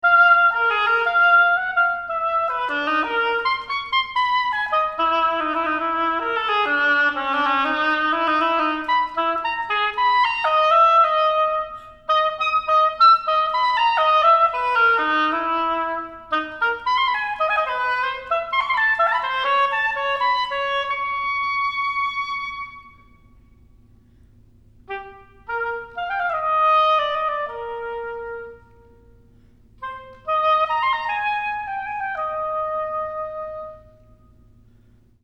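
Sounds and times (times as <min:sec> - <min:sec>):
solo oboe playing a prelude: 0:00.0 - 0:24.2, 0:24.8 - 0:34.9.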